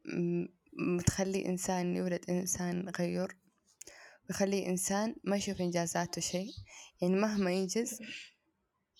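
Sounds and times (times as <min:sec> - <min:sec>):
speech: 0:00.2 - 0:03.5, 0:04.3 - 0:08.3
sparrows chirping: 0:04.6 - 0:08.9.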